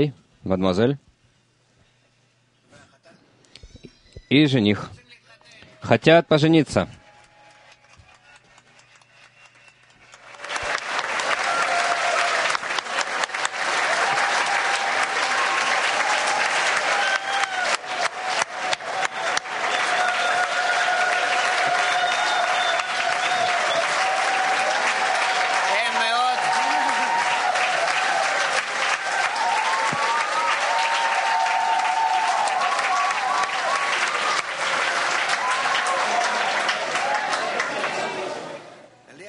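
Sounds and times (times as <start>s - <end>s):
speech: 0.0s - 1.0s, 4.3s - 5.0s, 5.8s - 7.0s
audience applauding: 7.0s - 38.6s
faint voices and whoops: 11.3s - 12.6s, 13.8s - 34.4s.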